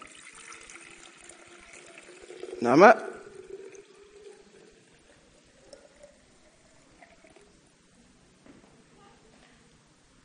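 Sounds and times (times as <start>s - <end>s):
water pouring into a container: 0.0s - 7.6s
speech: 2.6s - 3.1s.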